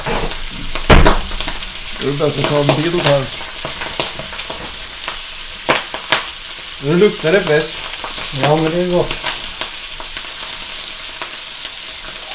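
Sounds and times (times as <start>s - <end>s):
pork sizzling in a hot steel pan: 0.0s - 12.3s
speech: 2.0s - 3.8s, 6.8s - 9.3s.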